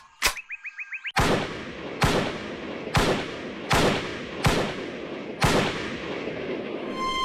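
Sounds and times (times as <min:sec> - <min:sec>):
gunshots at a shooting range: 0:01.2 - 0:06.8.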